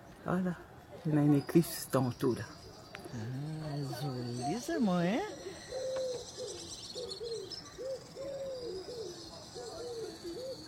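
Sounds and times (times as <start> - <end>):
speech: 0.2 - 5.5
bird giving short low hooting notes: 3.0 - 10.6.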